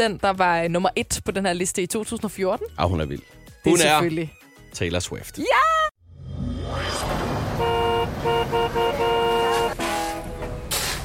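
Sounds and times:
speech: 0:00.0 - 0:05.8
low rumble of traffic: 0:06.8 - 0:11.0
car horns honking in a traffic jam: 0:07.5 - 0:10.9.

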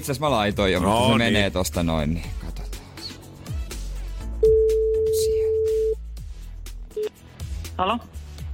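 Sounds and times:
speech: 0:00.0 - 0:02.6, 0:07.8 - 0:08.1
outgoing phone call ringing tone beeps: 0:04.4 - 0:06.0.

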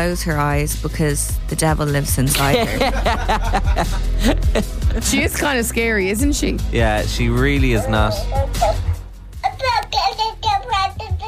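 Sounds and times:
speech: 0:00.0 - 0:08.8
laughter: 0:02.3 - 0:05.4
newborn baby squeaking and whimpering coos: 0:07.7 - 0:11.2.

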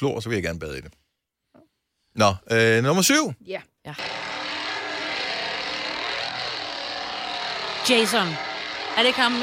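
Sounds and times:
speech: 0:00.0 - 0:01.0, 0:02.2 - 0:04.3, 0:07.8 - 0:09.4
chainsaw engine droning: 0:04.0 - 0:09.4.

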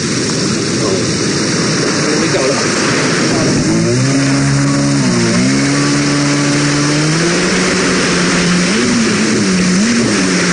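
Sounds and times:
jet ski engine starting and revving: 0:00.0 - 0:10.5
loud rushing noise: 0:00.0 - 0:10.5.

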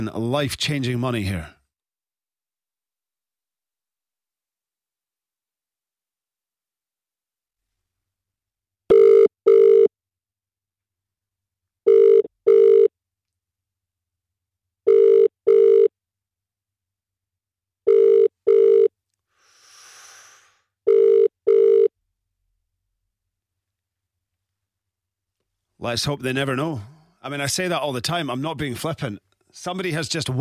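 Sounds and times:
speech: 0:00.0 - 0:01.6, 0:25.8 - 0:30.3
telephone ringing unanswered on a dialed call: 0:08.9 - 0:09.9, 0:11.9 - 0:12.9, 0:14.9 - 0:15.9, 0:17.9 - 0:18.9, 0:20.9 - 0:21.9.

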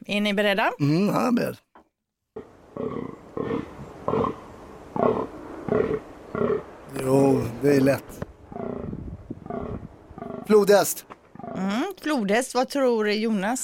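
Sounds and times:
speech: 0:00.0 - 0:01.7, 0:05.1 - 0:08.3, 0:10.5 - 0:13.6
rutting fallow deer bucks giving deep belching groans: 0:02.4 - 0:07.6, 0:08.5 - 0:10.6, 0:11.3 - 0:11.7.

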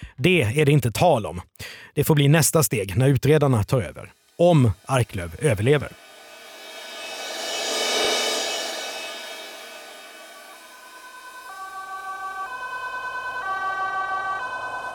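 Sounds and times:
speech: 0:00.2 - 0:06.1
vehicle whooshing past: 0:05.9 - 0:11.4
ambulance two-tone siren alternating high and low: 0:10.5 - 0:14.9.

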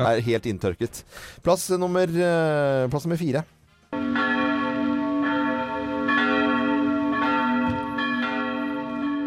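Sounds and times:
speech: 0:00.0 - 0:03.6
church bells ringing on Christmas Eve: 0:03.9 - 0:09.2.

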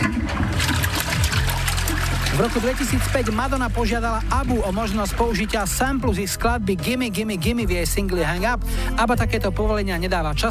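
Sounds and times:
water rushing and gurgling with a low churning rumble: 0:00.0 - 0:06.2
speech: 0:02.4 - 0:10.4.

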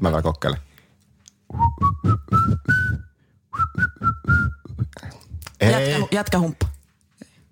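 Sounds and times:
speech: 0:00.0 - 0:00.7, 0:06.2 - 0:06.7
person whistling a tune: 0:01.5 - 0:05.0.

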